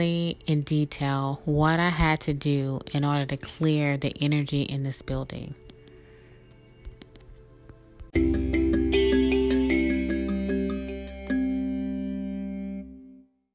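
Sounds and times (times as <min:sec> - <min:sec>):
speech: 0:00.0 - 0:05.6
mobile phone ringing with electronic ringtone melody: 0:08.2 - 0:12.5.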